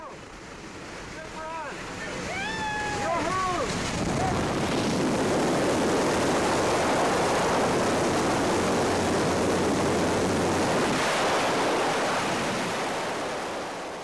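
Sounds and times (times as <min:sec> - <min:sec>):
loud rushing wind during tandem skydiving freefall buffeting the microphone: 0:01.8 - 0:14.0.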